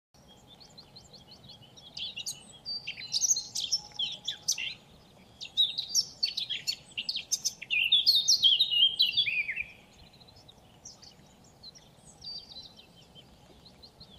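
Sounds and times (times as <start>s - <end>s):
Eurasian blackcap Sylvia atricapilla song: 0.2s - 14.1s.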